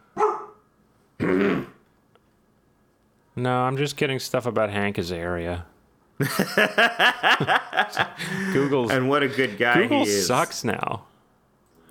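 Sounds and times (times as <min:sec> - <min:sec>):
dog barking: 0:00.1 - 0:00.6
speech: 0:03.4 - 0:11.1
laughter: 0:06.2 - 0:09.7.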